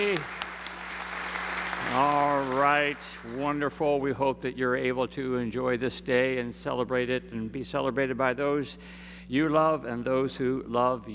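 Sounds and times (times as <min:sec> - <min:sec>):
speech: 0:00.0 - 0:00.4, 0:01.9 - 0:11.1
audience applauding: 0:00.0 - 0:03.9.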